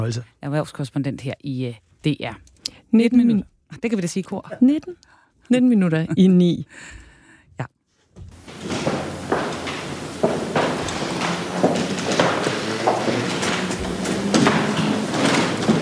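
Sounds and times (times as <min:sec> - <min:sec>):
speech: 0:00.0 - 0:07.0
shoes stepping on a palace floor in Oslo as people move a coffin: 0:08.1 - 0:15.7.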